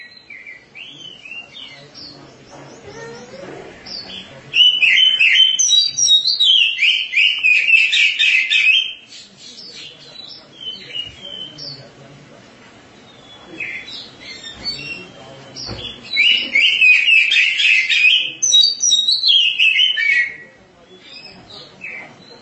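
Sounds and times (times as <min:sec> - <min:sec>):
oriental magpie-robin song of rich varied warbling phrases: 0:00.0 - 0:12.0, 0:13.0 - 0:22.4.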